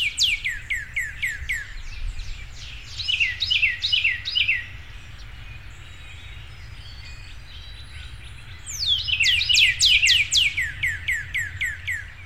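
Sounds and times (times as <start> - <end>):
northern cardinal singing downslurred whistles: 0.0 - 1.8, 2.9 - 4.7, 6.9 - 12.2.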